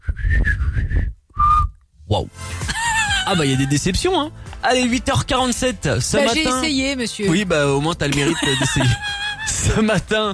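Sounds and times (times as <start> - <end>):
person whistling: 0.0 - 1.8
speech: 2.1 - 10.3
laughter: 2.7 - 3.8, 8.1 - 9.9.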